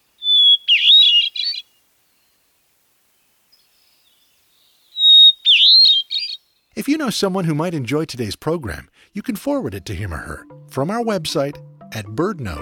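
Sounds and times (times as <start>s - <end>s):
hermit thrush singing fluty phrases: 0.0s - 2.3s, 3.6s - 6.6s
speech: 6.8s - 12.6s.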